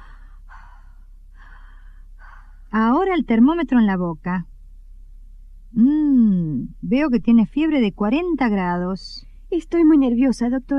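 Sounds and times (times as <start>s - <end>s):
deep breathing of a coughing feverish patient during a stethoscope examination: 0.0s - 2.7s
speech: 3.1s - 4.5s, 6.9s - 10.7s.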